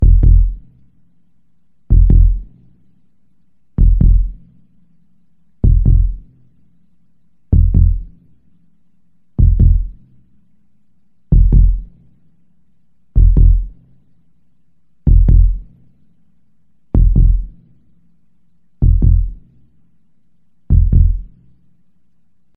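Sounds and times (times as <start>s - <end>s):
heartbeat: 0.0s - 0.6s, 1.9s - 2.5s, 3.8s - 4.4s, 5.6s - 6.3s, 7.5s - 8.2s, 9.4s - 10.0s, 11.3s - 11.9s, 13.2s - 13.8s, 15.0s - 15.7s, 16.9s - 17.6s, 18.8s - 19.4s, 20.7s - 21.4s.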